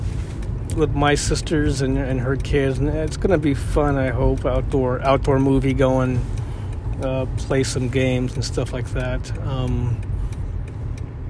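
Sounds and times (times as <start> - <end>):
car driving through traffic with low engine rumble: 0.0 - 11.2
road noise: 0.0 - 11.2
speech: 0.8 - 6.4, 7.0 - 10.1.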